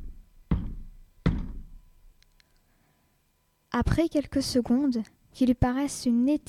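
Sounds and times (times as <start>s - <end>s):
hesitant knocking on a heavy wooden castle door: 0.5s - 1.8s
speech: 3.8s - 6.4s.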